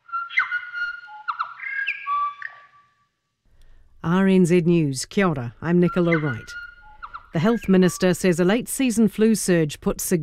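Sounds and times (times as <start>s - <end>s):
New Zealand bellbird singing: 0.1s - 2.8s, 5.6s - 8.4s
speech: 4.0s - 6.6s, 7.3s - 10.2s.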